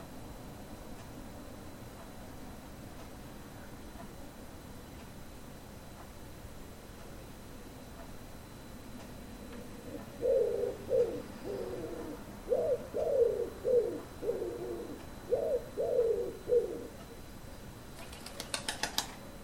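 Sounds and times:
common wood pigeon cooing: 9.8 - 17.1
common wood pigeon wing claps: 18.0 - 19.2.

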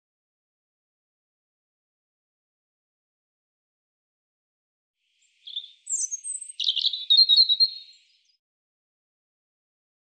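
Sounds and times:
European robin singing a short high-pitched phrase: 5.2 - 8.4.

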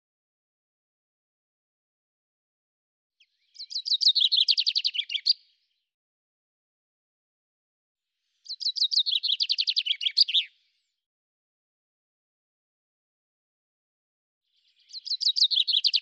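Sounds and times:
common chaffinch singing: 3.2 - 5.5, 8.4 - 10.6, 14.6 - 16.0.

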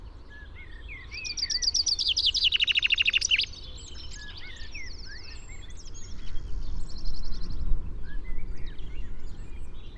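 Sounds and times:
common chaffinch Fringilla coelebs singing: 1.7 - 3.5.

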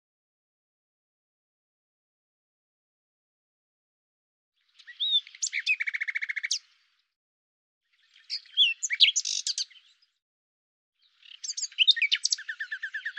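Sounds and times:
common nightingale song: 4.6 - 7.0, 7.9 - 10.2, 11.0 - 13.1.

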